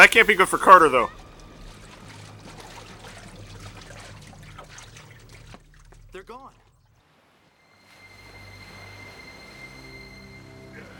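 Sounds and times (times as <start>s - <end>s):
speech: 0.0s - 1.2s
water pouring and splashing: 0.0s - 7.6s.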